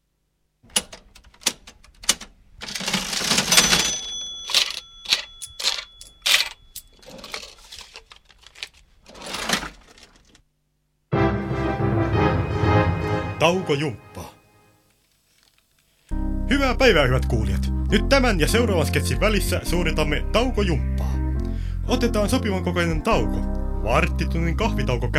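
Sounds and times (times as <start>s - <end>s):
cash register keys clacking and mechanism whirring: 0.7s - 10.4s
bright cash register bell ring: 2.8s - 7.9s
music: 11.1s - 14.8s, 16.1s - 25.1s
speech: 13.5s - 14.2s, 16.8s - 21.1s, 21.9s - 25.1s.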